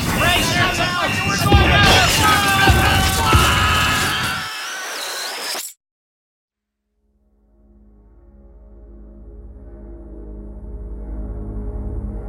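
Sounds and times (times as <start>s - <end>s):
booming impacts on the crew's ship in a video game: 0.0s - 4.3s
weapons firing on the crew's ship in a video game: 0.0s - 4.4s.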